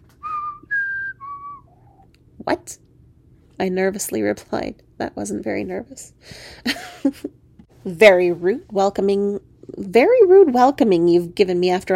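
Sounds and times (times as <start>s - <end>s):
person whistling a game show theme tune: 0.2s - 2.0s
speech: 2.4s - 2.8s, 3.6s - 11.9s.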